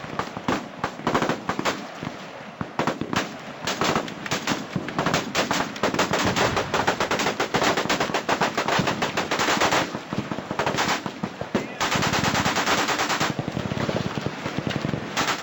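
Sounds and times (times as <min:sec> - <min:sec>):
machine gun fire: 0:00.2 - 0:01.8, 0:02.8 - 0:15.4.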